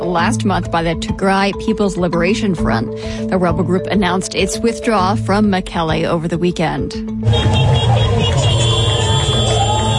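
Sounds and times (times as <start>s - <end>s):
speech: 0.1s - 8.4s
civilians cheering in a busy street: 7.2s - 9.9s
motorcycles parading through streets: 7.2s - 9.9s.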